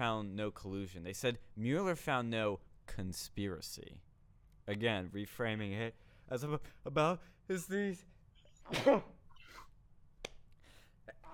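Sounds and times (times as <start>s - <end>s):
speech: 0.0s - 4.1s, 4.7s - 9.7s
loud sharp sneeze: 8.6s - 9.7s.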